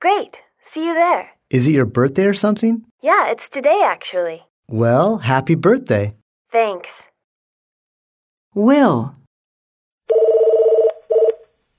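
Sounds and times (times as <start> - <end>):
speech: 0.0 - 7.1, 8.6 - 9.2
phone ringing with electronic trilling tone: 10.1 - 11.5.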